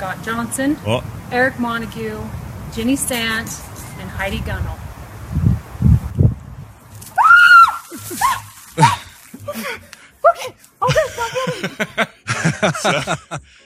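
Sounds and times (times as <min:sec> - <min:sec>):
speech: 0:00.0 - 0:04.8, 0:12.6 - 0:13.6
woman screaming excitedly: 0:07.2 - 0:09.6
breathy laughing: 0:08.8 - 0:10.0, 0:10.8 - 0:13.6.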